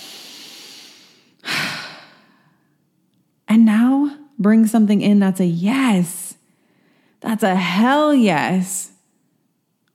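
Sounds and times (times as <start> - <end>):
long airy inhale during a guided breathing exercise: 0.0 - 2.7
speech: 3.6 - 6.2, 7.2 - 8.9.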